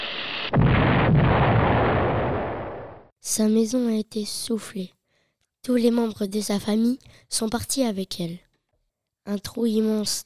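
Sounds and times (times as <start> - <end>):
bomb exploding during wartime: 0.0 - 3.1
speech: 3.3 - 5.0, 5.6 - 8.4, 9.3 - 10.2.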